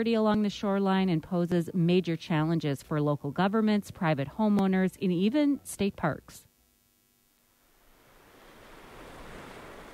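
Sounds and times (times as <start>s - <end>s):
speech: 0.0s - 6.5s
breezy hiss of wind over the surf: 7.6s - 9.9s
waves washing onto a lake shore carrying fine sand: 7.9s - 9.9s.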